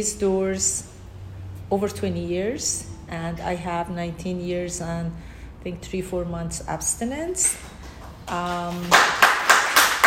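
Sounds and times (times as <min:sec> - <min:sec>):
speech: 0:00.0 - 0:01.0, 0:01.7 - 0:07.7, 0:08.3 - 0:09.3
audience clapping in a hall: 0:07.6 - 0:10.0.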